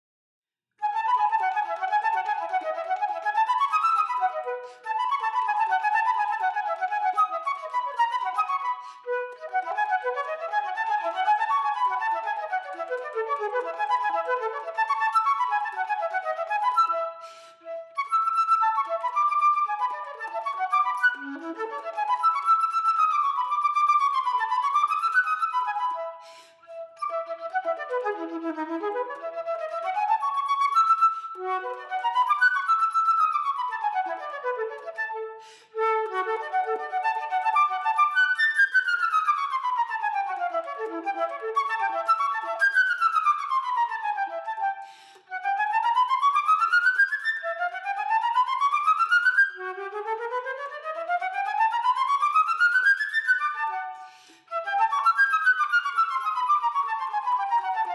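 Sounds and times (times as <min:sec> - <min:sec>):
flute performance: 0:00.8 - 0:57.9.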